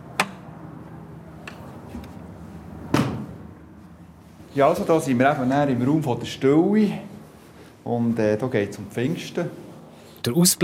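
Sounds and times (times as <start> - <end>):
heavy church door slamming shut with an echoing thud: 2.9 - 3.4
speech: 4.6 - 7.1, 7.8 - 9.6, 10.2 - 10.6.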